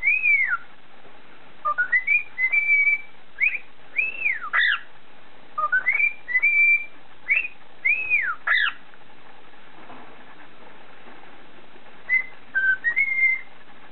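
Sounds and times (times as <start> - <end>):
cockatiel whistling a tune: 0.0 - 0.6, 1.6 - 4.9, 5.6 - 8.8, 12.1 - 13.9.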